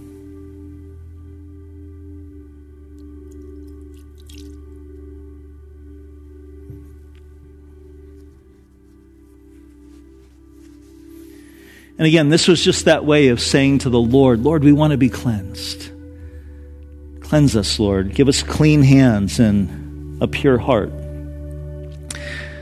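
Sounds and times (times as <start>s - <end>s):
steady low electrical hum: 0.0s - 22.6s
water poured over fingertips trickling into a bowl: 3.3s - 4.7s
speech: 12.0s - 15.9s, 17.3s - 21.0s.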